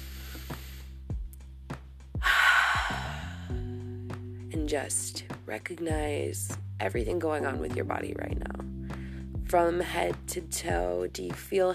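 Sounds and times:
deep breath drawn in during a guided relaxation: 0.0 - 1.0, 2.2 - 3.8, 8.8 - 9.3
soft sustained music with gentle plucked notes: 0.0 - 11.7
speech: 4.6 - 8.7, 9.5 - 11.7.

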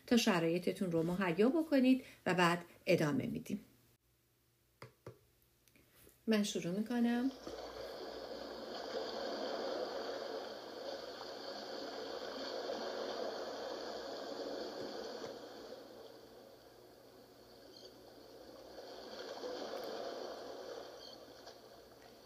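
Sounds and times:
speech: 0.1 - 3.7, 6.3 - 7.7
gentle sea waves lapping at the shore: 7.3 - 22.2.

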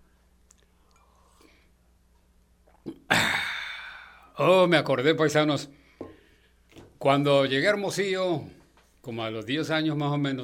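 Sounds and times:
person sipping a drink from a small cup: 0.5 - 1.7, 2.6 - 4.3
gulp: 2.6 - 4.2
speech: 4.4 - 5.8, 7.0 - 10.4.

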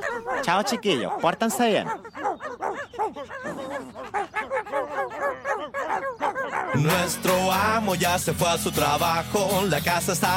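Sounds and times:
dog barking and yipping in sharp high-pitched calls: 0.0 - 6.9
speech: 0.4 - 2.1, 6.8 - 10.3.

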